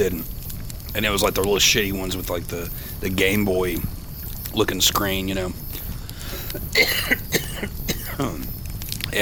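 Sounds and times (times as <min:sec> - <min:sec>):
speech: 0:00.0 - 0:05.7, 0:06.5 - 0:09.2
person coughing: 0:06.5 - 0:08.4
throat clearing: 0:06.5 - 0:08.5.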